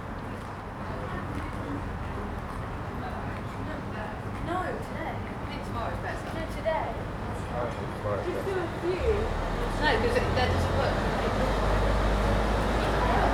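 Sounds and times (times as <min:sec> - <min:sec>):
murmur of voices and chatter outside a small bar: 0:00.3 - 0:13.3
low rumble of passing traffic in a narrow street: 0:07.0 - 0:13.3
vehicle approaching: 0:08.4 - 0:13.3.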